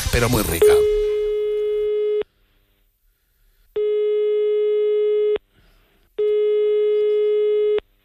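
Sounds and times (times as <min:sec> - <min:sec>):
speech: 0:00.2 - 0:01.0
electronic telephone line tone while placing a call: 0:00.6 - 0:02.3, 0:03.8 - 0:05.4, 0:06.2 - 0:07.8.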